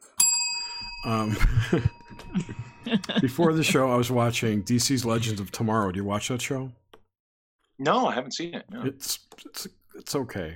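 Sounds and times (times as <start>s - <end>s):
bright metallic bell ding: 0.0s - 3.8s
speech: 1.0s - 6.8s, 7.8s - 10.5s
laughter: 1.1s - 5.5s.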